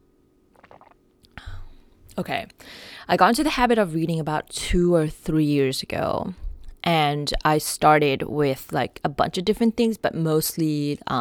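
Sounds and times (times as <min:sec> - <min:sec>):
person sipping hot chai tea: 0:00.6 - 0:01.8
speech: 0:02.2 - 0:11.1.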